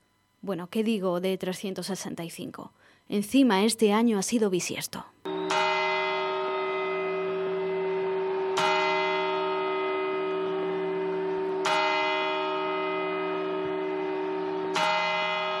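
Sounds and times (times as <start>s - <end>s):
speech: 0.4s - 5.2s
New Year's Eve clock bell chimes: 5.3s - 15.5s.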